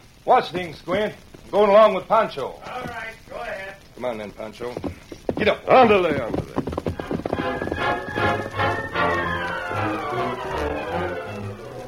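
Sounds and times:
horses riding into a hideout, hooves clip-clopping: 0:00.0 - 0:11.8
speech: 0:00.2 - 0:03.2, 0:04.0 - 0:06.6
continuous tonal background: 0:06.3 - 0:11.8.

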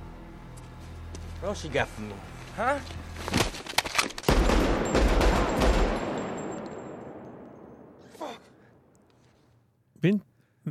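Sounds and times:
speech: 0:01.4 - 0:03.4, 0:10.0 - 0:10.3
loud gunshots from a film scene: 0:04.3 - 0:07.2
heavy blast rolling into a long echo: 0:04.3 - 0:08.1.

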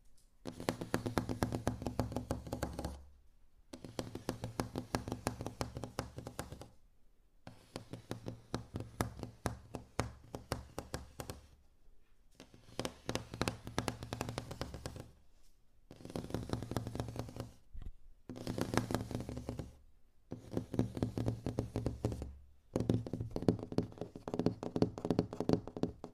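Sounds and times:
soft quick fingertip tapping on various objects: 0:00.4 - 0:03.1, 0:03.7 - 0:06.8, 0:07.5 - 0:11.6, 0:12.4 - 0:15.2, 0:15.9 - 0:26.1.

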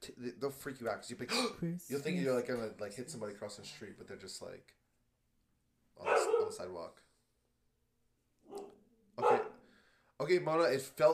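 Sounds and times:
speech: 0:00.0 - 0:04.8, 0:06.0 - 0:07.1, 0:10.2 - 0:11.1
female dog barking: 0:06.0 - 0:06.6, 0:08.4 - 0:09.6
female dog yelping and whining: 0:08.4 - 0:09.6.

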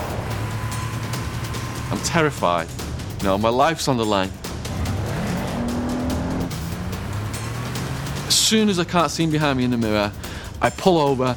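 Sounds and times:
car tires squealing while speeding and swerving: 0:00.0 - 0:02.4, 0:04.7 - 0:09.0
racing car engine roaring: 0:00.0 - 0:09.4
speech: 0:01.9 - 0:04.4, 0:08.5 - 0:11.3.

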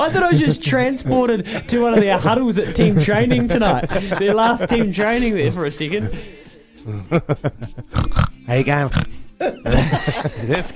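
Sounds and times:
laughter: 0:00.0 - 0:08.0, 0:09.4 - 0:10.7
speech: 0:00.0 - 0:10.7
person imitating pig grunts, snorts and oinks: 0:07.9 - 0:08.3.

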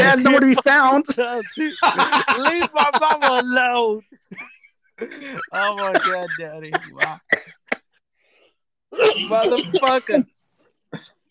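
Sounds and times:
laughter: 0:00.0 - 0:07.2, 0:09.2 - 0:10.2
speech: 0:00.1 - 0:07.6, 0:08.9 - 0:11.2
person coughing: 0:05.0 - 0:07.8, 0:08.9 - 0:10.2.

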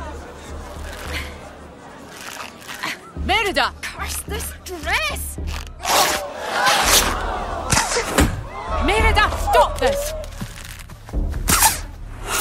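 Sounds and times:
crowd murmuring: 0:00.0 - 0:09.9
speech: 0:03.5 - 0:05.5, 0:08.0 - 0:10.2
arrows striking a target in an archery contest: 0:05.8 - 0:08.4.

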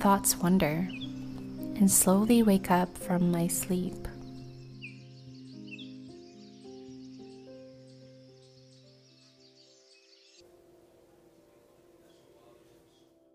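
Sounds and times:
speech: 0:00.0 - 0:01.0, 0:01.8 - 0:04.1
morning birds chirping and twittering: 0:00.0 - 0:10.4, 0:11.5 - 0:13.3
soft steady melodic music bed: 0:00.0 - 0:13.3.

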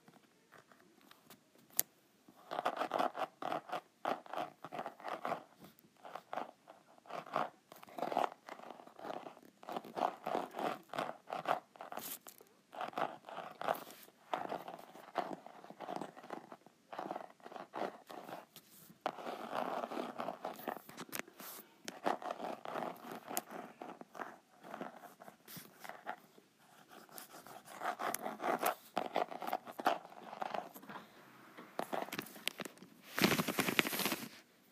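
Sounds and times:
rapid scratching and tapping on a notepad: 0:00.0 - 0:34.3
louder rougher paper rustle: 0:31.9 - 0:34.4.

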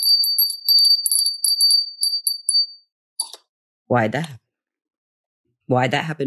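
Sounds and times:
small high-pitched bell ringing: 0:00.0 - 0:03.3
speech: 0:03.9 - 0:04.4, 0:05.7 - 0:06.2.

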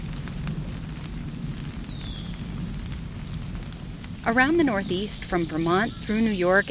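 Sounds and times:
low rumble: 0:00.0 - 0:06.2
caterpillar frass falling through trees: 0:00.0 - 0:06.6
speech: 0:04.2 - 0:06.6
high bird chirp: 0:04.7 - 0:06.6.

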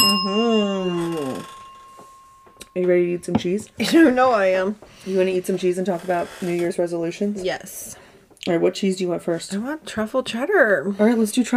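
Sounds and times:
small bell ringing: 0:00.0 - 0:03.7
speech: 0:02.8 - 0:11.5.

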